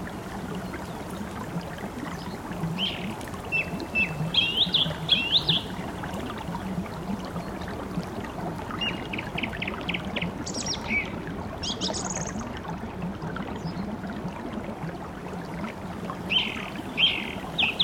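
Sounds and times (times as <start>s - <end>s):
babbling brook gurgling: 0.0s - 17.8s
wind: 0.0s - 17.8s
birds chirping and trilling: 2.8s - 5.7s, 10.5s - 12.4s, 16.3s - 17.8s.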